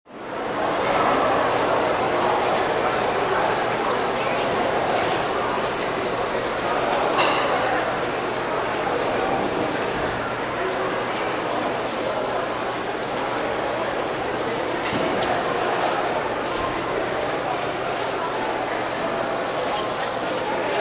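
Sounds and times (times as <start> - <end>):
crowd at night: 0.1 - 20.7.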